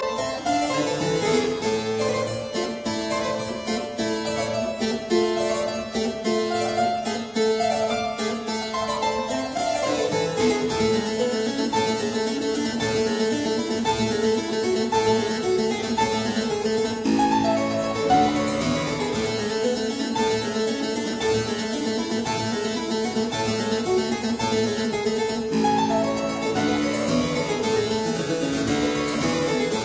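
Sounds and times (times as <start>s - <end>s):
keyboard sonata in D major: 0.0s - 29.8s.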